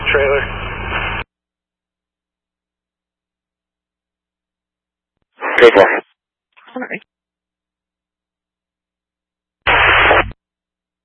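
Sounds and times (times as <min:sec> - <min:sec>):
speech: 0:00.1 - 0:01.0, 0:05.6 - 0:06.0, 0:06.8 - 0:07.1
loud harsh burst of radio static: 0:05.4 - 0:06.1, 0:09.7 - 0:10.4
brief garbled radio transmission: 0:05.4 - 0:07.0, 0:09.7 - 0:10.4.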